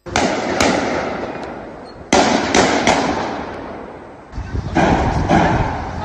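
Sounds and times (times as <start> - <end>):
gunshots echoing in a city street: 0.0 - 6.0
faint voices: 4.3 - 6.0.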